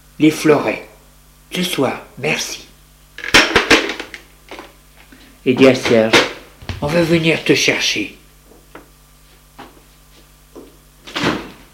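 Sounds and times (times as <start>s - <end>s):
speech: 0.2s - 0.9s, 1.5s - 3.3s, 5.4s - 8.2s
low steady hum: 6.4s - 9.4s
door thud as it swings: 6.6s - 8.0s.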